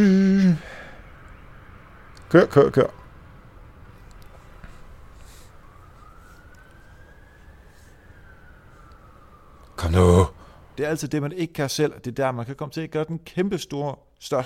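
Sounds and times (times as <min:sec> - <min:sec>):
speech: 0:00.0 - 0:00.7, 0:02.3 - 0:03.0, 0:09.9 - 0:14.4
ambulance siren wailing while passing: 0:00.0 - 0:10.8
steady traffic rumble: 0:00.0 - 0:13.7.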